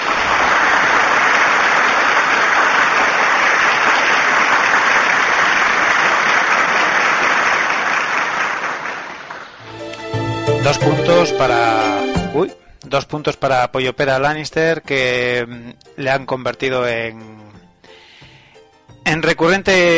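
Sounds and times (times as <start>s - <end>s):
crowd applauding: 0.0s - 12.0s
speech: 10.7s - 17.4s, 19.0s - 19.9s.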